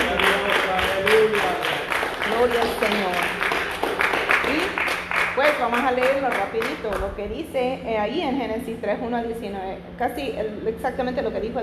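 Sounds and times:
crowd applauding: 0.0s - 7.1s
speech: 2.4s - 3.4s, 5.6s - 11.6s.

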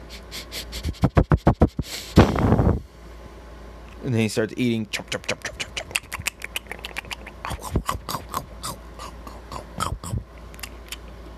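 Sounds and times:
person imitating a fox sniffing at food: 0.0s - 2.8s, 5.0s - 10.8s
speech: 1.0s - 1.3s, 4.0s - 5.5s.

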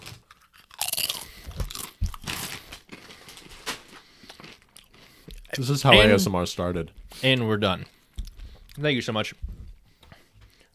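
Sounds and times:
crunching spicy sweet chili tortilla chips being bitten and chewed: 0.0s - 5.6s
speech: 5.6s - 8.0s, 8.8s - 9.5s.

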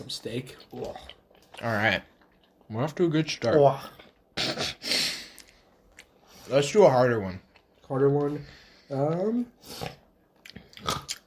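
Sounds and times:
speech: 0.0s - 2.1s, 2.7s - 4.5s, 6.5s - 10.0s
person chewing crunchy food: 0.5s - 2.7s, 5.2s - 6.5s, 7.3s - 7.9s, 8.6s - 11.2s.

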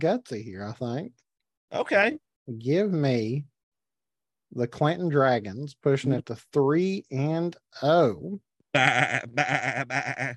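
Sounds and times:
speech: 0.0s - 3.5s, 4.5s - 10.3s
sheep bleating: 8.8s - 10.3s.

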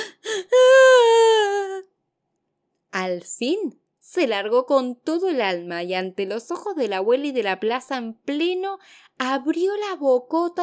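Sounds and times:
voice imitating a child crying: 0.0s - 1.8s
speech: 3.1s - 10.6s.

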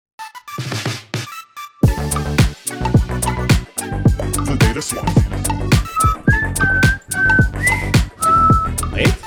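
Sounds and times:
soft rhythmic thumps: 1.8s - 9.2s
speech: 4.8s - 5.7s
person whistling a short melody: 5.7s - 9.2s.

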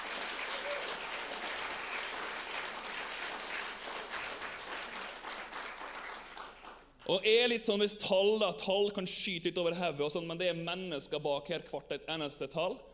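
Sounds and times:
crowd applauding: 0.0s - 7.0s
speech: 7.1s - 12.9s.

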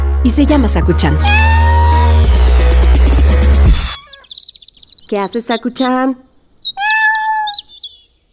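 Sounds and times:
speech: 0.2s - 1.6s, 5.1s - 6.3s
small birds chirping in a garden: 0.9s - 2.8s, 3.9s - 8.3s
louder longer tonal bird call: 1.3s - 2.6s, 3.9s - 8.2s.

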